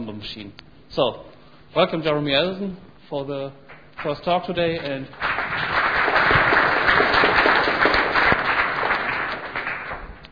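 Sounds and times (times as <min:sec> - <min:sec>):
speech: 0:00.0 - 0:05.3
audience applause at a technical conference talk: 0:04.9 - 0:10.3.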